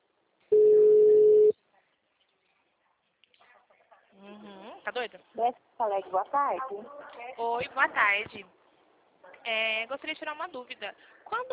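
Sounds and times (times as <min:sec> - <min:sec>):
telephone tone while calling a local health clinic: 0:00.5 - 0:01.6
speech: 0:04.9 - 0:08.6, 0:09.4 - 0:11.5.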